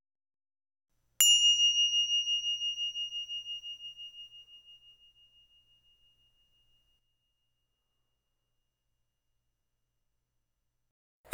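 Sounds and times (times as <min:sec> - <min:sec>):
mindfulness bell ringing: 0:01.2 - 0:06.4.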